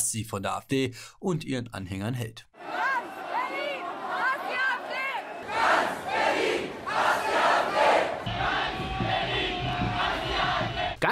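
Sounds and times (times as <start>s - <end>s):
speech: 0.1s - 2.5s
large protest crowd chanting and shouting at a demonstration in Berlin: 2.6s - 11.0s.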